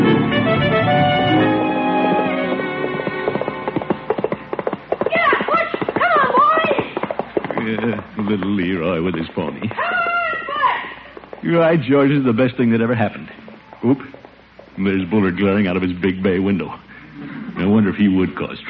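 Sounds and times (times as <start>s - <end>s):
light music: 0.0s - 5.4s
pony hooves clip-clopping: 1.2s - 15.2s
speech: 11.4s - 14.1s, 14.8s - 16.8s, 17.6s - 18.6s.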